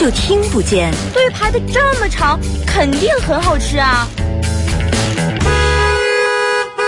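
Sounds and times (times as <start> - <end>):
speech: 0.0 - 5.3
several car horns honking in a traffic jam: 5.4 - 6.8.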